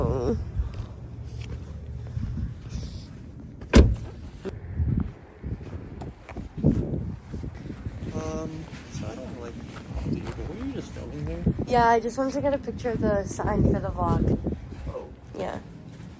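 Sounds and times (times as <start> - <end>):
low rumbling outdoor noise: 0.0 - 16.1
car door opening and shutting: 3.6 - 4.5
speech: 11.7 - 14.5.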